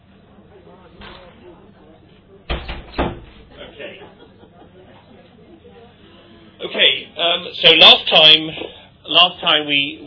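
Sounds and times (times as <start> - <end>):
faint murmuring: 0.0 - 10.0
door swinging shut with a latching knock: 2.5 - 3.5
laughter: 3.5 - 5.4
speech: 7.2 - 10.0.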